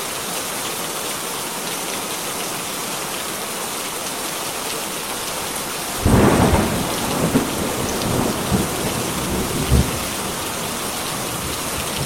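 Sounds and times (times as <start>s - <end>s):
heavy rain pouring on a farm at night: 0.0s - 12.0s
deep thunder rumbling during a night storm on a farm: 5.6s - 12.0s.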